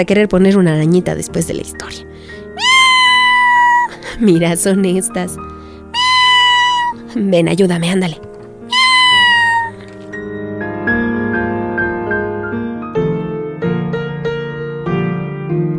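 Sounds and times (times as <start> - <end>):
speech: 0.0 - 2.7, 4.2 - 5.5, 7.1 - 8.3
soft steady melodic music: 0.3 - 15.7
kitten meowing: 2.6 - 4.0, 5.9 - 7.1, 8.7 - 10.1.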